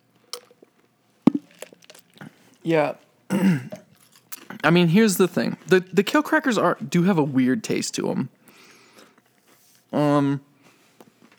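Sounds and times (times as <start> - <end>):
person slurping water: 1.3 - 2.4
person swallowing water: 1.3 - 2.4, 3.3 - 4.6
speech: 2.6 - 3.8, 4.6 - 8.4, 9.9 - 10.5.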